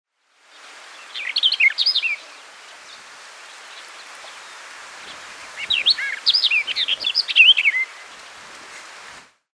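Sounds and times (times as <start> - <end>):
quiet hiss: 0.1 - 9.4
barred warbler scratchy chattering warble: 1.0 - 8.4.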